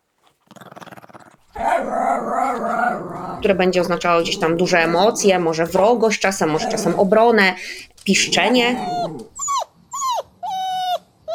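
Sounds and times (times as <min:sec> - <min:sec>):
dog growling: 0:00.4 - 0:09.5
speech: 0:02.2 - 0:09.3.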